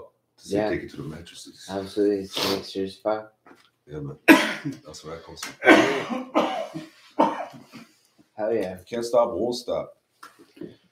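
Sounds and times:
speech: 0.4 - 7.3, 8.4 - 10.0
harsh raspy coughs after a dab hit: 4.2 - 4.8, 5.6 - 7.9.

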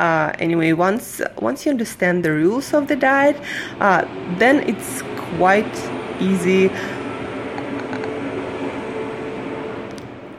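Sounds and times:
speech: 0.0 - 7.0
New York City street traffic roar of passing cars: 0.0 - 10.3.

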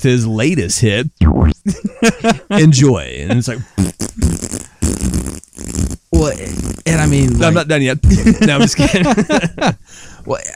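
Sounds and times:
speech: 0.0 - 4.6, 6.2 - 10.5
person imitating a fart with their mouth: 1.2 - 1.8, 3.2 - 8.4
laughter: 1.7 - 3.6, 7.2 - 9.8.

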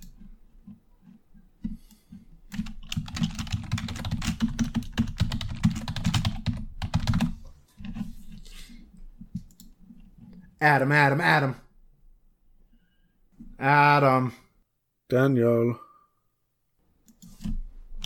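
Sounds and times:
rapid keyboard typing of a message: 2.5 - 7.4
speech: 10.6 - 11.6, 13.6 - 14.4, 15.1 - 15.8.

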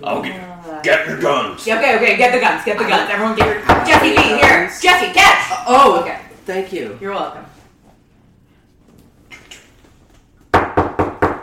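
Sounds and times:
speech: 0.0 - 7.6
loud knocks on a door: 3.4 - 4.6, 10.5 - 11.4.

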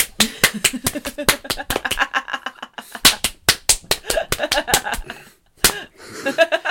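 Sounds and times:
slapping sounds: 0.0 - 2.2, 3.0 - 5.9.

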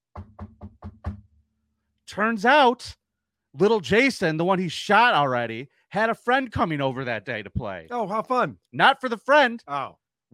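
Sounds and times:
firm knocks on a wooden door: 0.0 - 1.3
speech: 2.1 - 3.0, 3.6 - 10.3.

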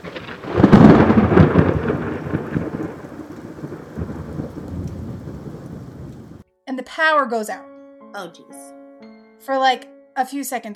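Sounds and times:
steady rain hissing: 0.0 - 6.4
thunder crack and rumble from a lightning strike: 0.0 - 6.4
speech: 7.0 - 8.8, 9.4 - 10.7.

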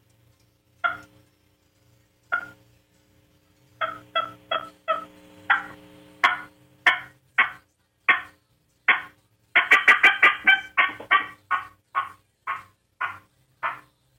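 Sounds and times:
friction box turkey call imitating a hen's fly-down cackle: 0.8 - 1.1, 2.3 - 2.6, 3.8 - 8.3, 8.9 - 13.9.

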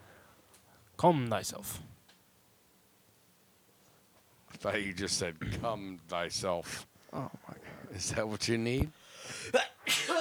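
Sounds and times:
speech: 1.0 - 1.9, 4.6 - 10.1
person sneezing: 9.3 - 10.1.

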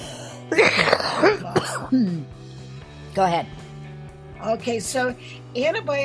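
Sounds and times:
person coughing: 0.5 - 2.3
person clearing throat: 0.5 - 2.4
speech: 0.5 - 2.4, 3.2 - 3.6, 4.4 - 6.0.

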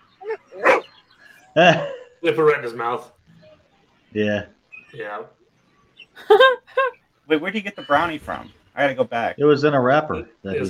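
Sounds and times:
dog yipping and barking in a commercial: 0.2 - 0.9
speech: 1.6 - 3.2, 4.1 - 5.4, 6.2 - 10.6.

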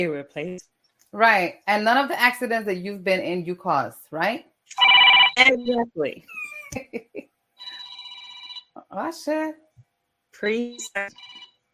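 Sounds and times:
speech: 0.0 - 7.3, 8.9 - 9.6, 10.4 - 11.4
phone electronic ringtone trilling: 4.8 - 5.5, 7.6 - 8.7, 11.1 - 11.6.

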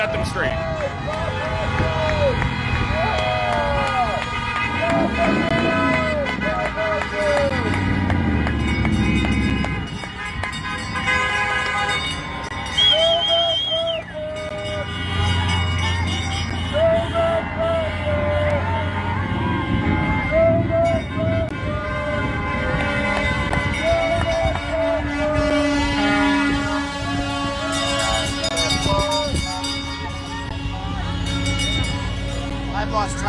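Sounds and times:
speech: 0.0 - 1.9
convoy of heavy trucks rumbling past: 0.0 - 33.2
crowd noise: 0.0 - 33.2
truck air horns blaring: 0.0 - 33.2
whistles: 12.7 - 14.2.

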